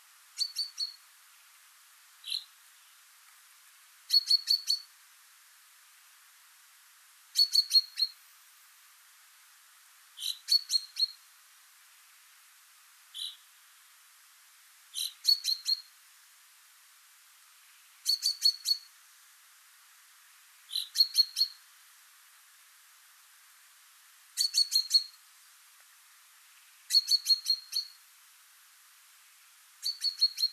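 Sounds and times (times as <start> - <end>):
common chaffinch Fringilla coelebs calling: 0.3 - 1.6, 2.2 - 3.0, 4.0 - 4.9, 7.3 - 8.3, 10.2 - 11.3, 13.1 - 13.5, 14.9 - 16.0, 17.7 - 19.0, 20.6 - 21.7, 24.3 - 25.2, 26.6 - 28.0, 29.8 - 30.5.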